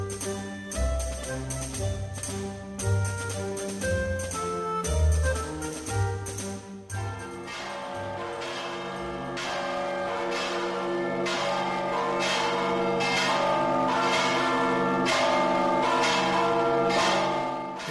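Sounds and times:
cathedral church bells pealing: 0.0 - 17.8.

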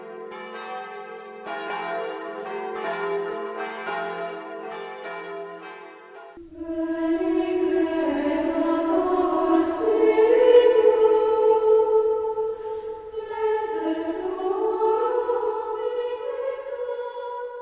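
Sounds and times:
church bells pealing: 0.0 - 17.5.

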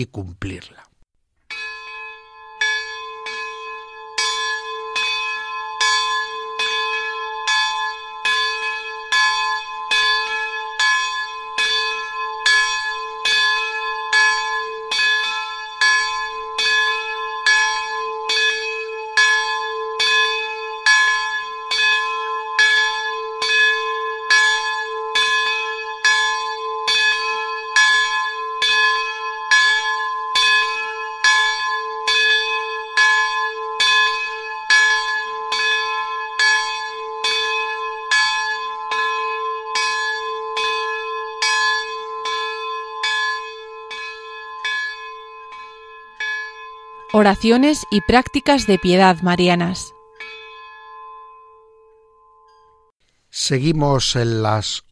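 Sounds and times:
speech: 0.0 - 0.9, 47.2 - 50.0, 53.5 - 54.9
church bell tolling with a lingering metallic hum: 1.5 - 48.8, 49.6 - 52.9.

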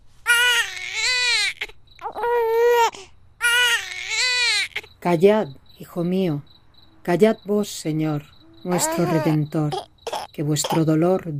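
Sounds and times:
infant wailing: 0.3 - 4.9, 8.6 - 10.9
speech: 5.0 - 6.5, 7.1 - 11.3.

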